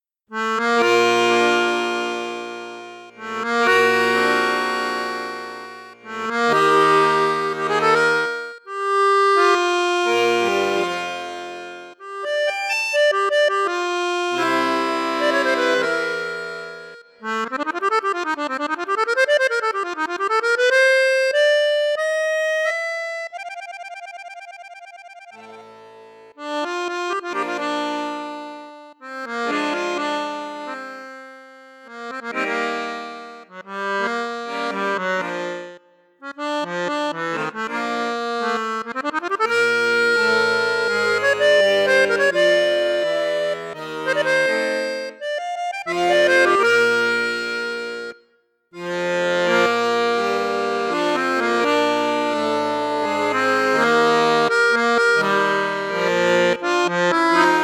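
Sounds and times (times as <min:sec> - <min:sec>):
accordion on bassoon register: 0:00.0 - 0:57.6.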